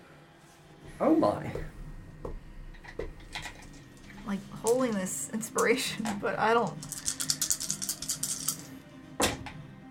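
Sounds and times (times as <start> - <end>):
speech: 1.0 - 1.8, 4.3 - 7.0
heavy dice rattling across a hard tabletop: 6.7 - 8.7.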